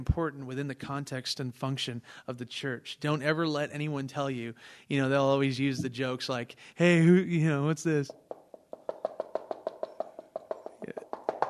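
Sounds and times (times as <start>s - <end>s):
speech: 0.0s - 8.2s
knocking on a door: 8.1s - 11.4s.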